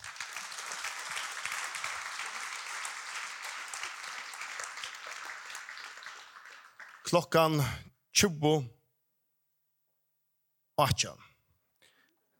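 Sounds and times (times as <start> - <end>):
audience applause: 0.0 - 7.3
speech: 7.1 - 8.8, 10.8 - 11.2.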